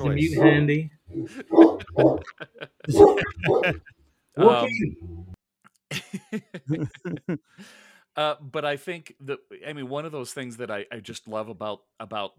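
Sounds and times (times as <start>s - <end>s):
speech: 0.0s - 5.1s, 5.9s - 12.3s
two dogs barking at each other: 0.3s - 3.9s
laughter: 1.2s - 4.8s, 5.9s - 7.7s.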